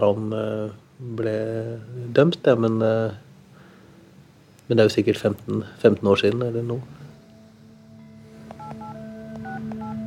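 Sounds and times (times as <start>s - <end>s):
speech: 0.0s - 3.2s, 4.7s - 7.0s
steady low hum: 0.0s - 10.0s
phone keypad tones dialing a district court number: 8.5s - 10.0s.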